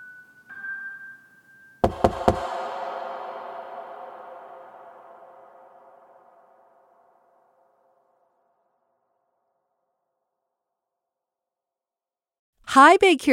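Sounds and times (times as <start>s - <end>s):
loud sharp knocks on a door: 1.8s - 2.7s
long ring: 1.8s - 8.5s
speech: 12.7s - 13.3s.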